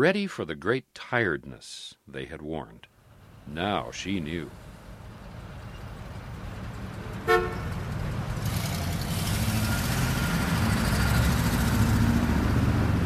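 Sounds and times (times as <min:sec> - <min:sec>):
speech: 0:00.0 - 0:02.9, 0:03.5 - 0:04.7
large American car engine roaring on a highway: 0:03.0 - 0:13.0
short car horn toot: 0:07.2 - 0:07.7.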